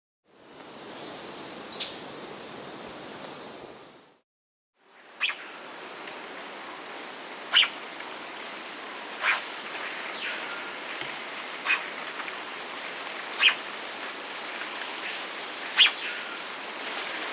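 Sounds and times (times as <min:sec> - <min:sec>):
Chestnut-crowned gnateater Conopophaga castaneiceps calling in the Andes: 0:00.6 - 0:04.0, 0:05.2 - 0:16.6.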